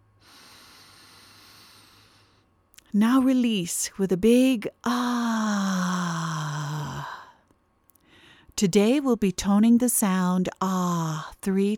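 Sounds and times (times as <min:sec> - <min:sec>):
deep inhaling breath drawn to the bottom of the lungs: 0:00.2 - 0:02.5
speech: 0:02.9 - 0:05.7, 0:08.6 - 0:11.7.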